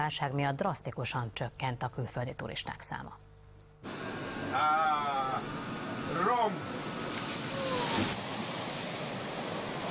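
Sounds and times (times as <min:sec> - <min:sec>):
speech: 0:00.0 - 0:06.8
river water churning and splashing from an amphibious bus: 0:05.4 - 0:09.8.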